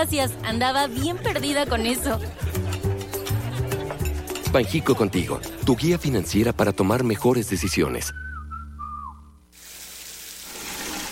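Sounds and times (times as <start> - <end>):
speech: 0.0 - 2.6, 4.5 - 8.2
laughter: 0.9 - 4.5
brief whistle-like tone: 7.6 - 9.4
hot water gushing from a tap into a bucket: 9.6 - 11.1.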